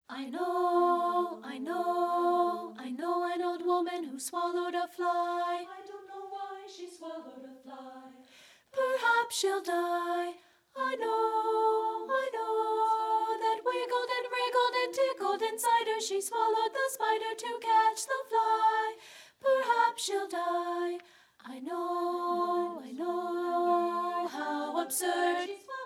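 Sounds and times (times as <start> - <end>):
soprano treble voice singing: 0.0 - 25.8.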